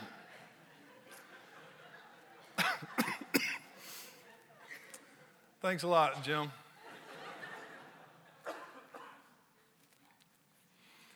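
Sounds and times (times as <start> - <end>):
laughter: 0.0 - 5.4, 6.7 - 9.5
sharp coughs: 2.6 - 3.7, 8.4 - 9.3
speech: 5.6 - 6.6.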